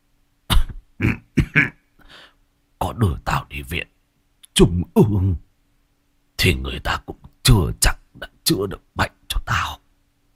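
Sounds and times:
elderly ailing man coughing hard: 0.5 - 1.8
speech: 3.0 - 3.9, 4.6 - 5.4, 6.4 - 9.8.

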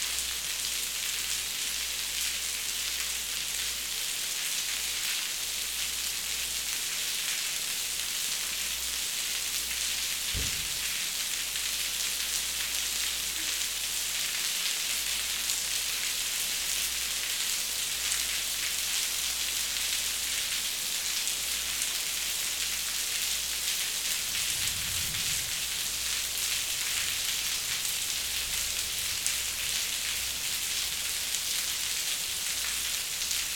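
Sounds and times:
steady dense rain pattering on a hard surface: 0.0 - 33.5
brief low thump: 10.3 - 10.9.

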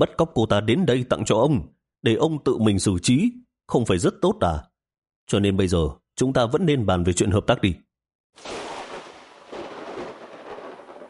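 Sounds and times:
speech: 0.0 - 4.7, 5.3 - 8.7
rumbling thunder in a storm: 8.4 - 11.0.

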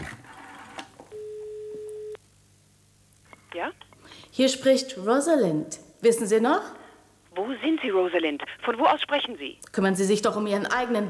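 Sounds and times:
low hum: 0.0 - 11.0
telephone line tone while dialing a number: 1.1 - 2.2
speech: 3.6 - 6.8, 7.4 - 11.0.

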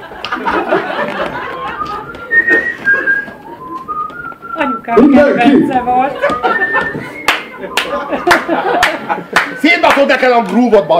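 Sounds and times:
people laughing: 0.0 - 4.0, 5.0 - 9.8
chatter: 0.5 - 10.9
person whistling a wandering melody: 1.7 - 5.6, 6.2 - 8.3
speech: 4.9 - 6.6, 8.5 - 10.9.

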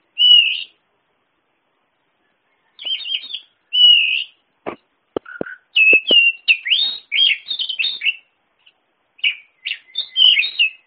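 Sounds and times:
Oriental magpie-robin song: 0.1 - 0.8, 2.2 - 4.4, 5.2 - 10.8.

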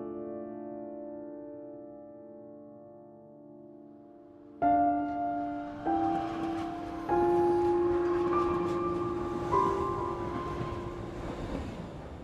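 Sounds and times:
tonal whines of a train pulling into a station: 4.8 - 12.2.

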